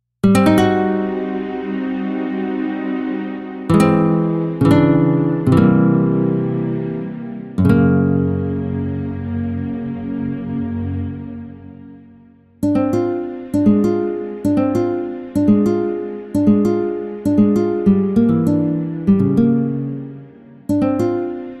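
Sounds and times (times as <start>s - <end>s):
classical guitar recital: 0.2s - 11.6s, 12.6s - 21.5s.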